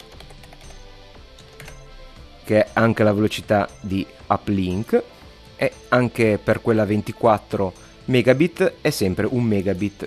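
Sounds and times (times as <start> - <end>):
computer keyboard keys clicking: 0.0 - 0.8, 1.4 - 1.8
speech: 2.5 - 10.0.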